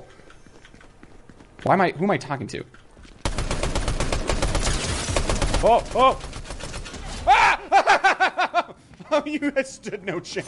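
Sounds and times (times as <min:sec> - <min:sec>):
speech: 0:01.6 - 0:02.8, 0:05.6 - 0:06.3, 0:09.1 - 0:10.4
gunfire in a video game: 0:03.2 - 0:07.2
laughter: 0:07.3 - 0:10.4.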